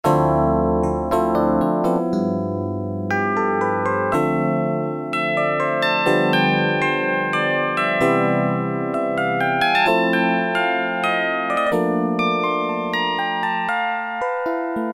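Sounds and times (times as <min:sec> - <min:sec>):
Yamaha TX81Z synthesizer: 0:00.0 - 0:14.9.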